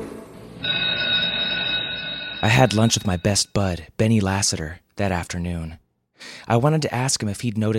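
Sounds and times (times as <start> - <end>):
shrill electric school bell ringing at end of class: 0.6 - 3.5
speech: 2.4 - 7.7.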